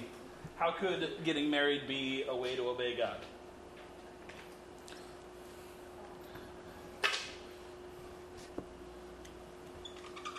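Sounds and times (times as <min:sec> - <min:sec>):
speech: 0:00.6 - 0:03.4
marker squeaking on a board: 0:09.8 - 0:10.3.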